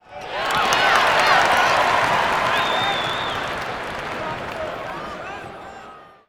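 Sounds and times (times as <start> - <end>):
crowds: 0.0 - 6.2.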